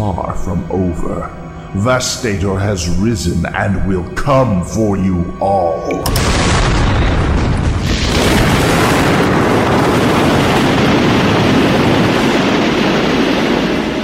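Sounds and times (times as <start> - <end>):
speech: 0.0 - 6.8
starship exploding in an audio drama: 6.0 - 14.0.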